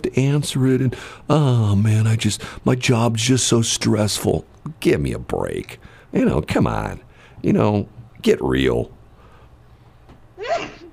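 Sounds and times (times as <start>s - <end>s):
speech: 0.1s - 9.0s
sneeze: 10.4s - 10.9s.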